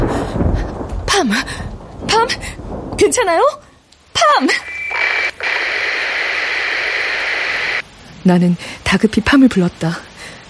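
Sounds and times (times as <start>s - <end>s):
speech: 1.2s - 3.6s, 4.2s - 4.7s, 8.2s - 10.1s
radio static hiss with a faint tonal whine: 4.6s - 7.8s.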